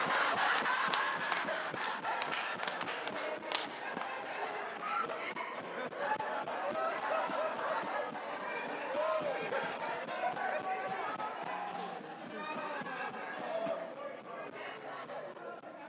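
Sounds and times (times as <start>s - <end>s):
scattered sharp claps from a live audience: 0.0s - 13.8s
large live audience hollering and cheering: 0.0s - 15.8s
laughter: 0.0s - 15.8s.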